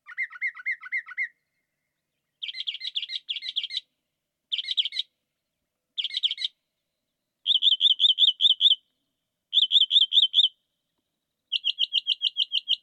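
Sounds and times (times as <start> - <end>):
Northern mockingbird singing buzzy notes and whistled runs: 0.0 - 3.9, 6.0 - 8.9, 9.5 - 12.8.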